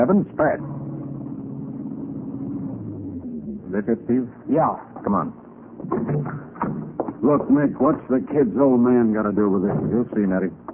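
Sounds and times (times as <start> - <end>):
speech: 0.0 - 0.8, 3.7 - 6.5, 7.2 - 10.6
car engine rumbling while driving: 0.0 - 4.5.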